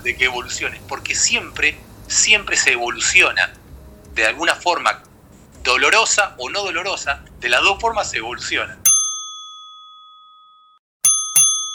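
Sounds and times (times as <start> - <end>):
speech: 0.0 - 3.6, 4.2 - 8.8
bell ringing: 8.9 - 11.7.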